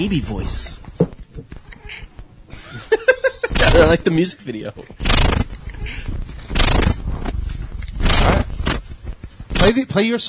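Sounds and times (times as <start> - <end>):
speech: 0.0 - 0.8, 3.7 - 5.1, 9.7 - 10.2
cat scratching itself: 0.0 - 10.2
short high squeaky cat-like cries: 1.6 - 2.2
laughter: 2.5 - 4.9.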